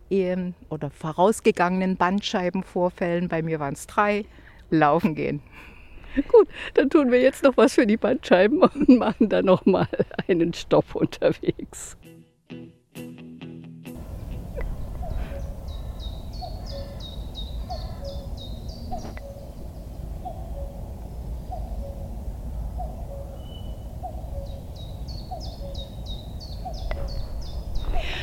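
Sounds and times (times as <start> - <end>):
outdoor noise: 0.0 - 12.0, 14.0 - 28.2
speech: 0.1 - 12.2
cuckoo calling its two-note song: 14.0 - 28.2
small birds twittering: 14.0 - 28.2.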